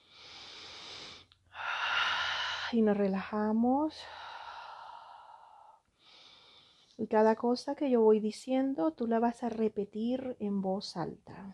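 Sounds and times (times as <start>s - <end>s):
deep breath during a guided breathing and relaxation exercise: 0.0s - 2.8s, 4.0s - 7.0s
speech: 2.7s - 4.2s, 7.0s - 11.5s.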